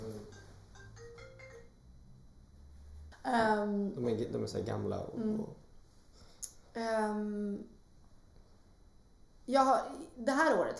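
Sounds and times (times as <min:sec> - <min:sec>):
new mobile phone ringtone with bright electronic notes: 0:00.0 - 0:01.9
speech: 0:03.2 - 0:05.6, 0:06.8 - 0:07.8, 0:09.5 - 0:10.7.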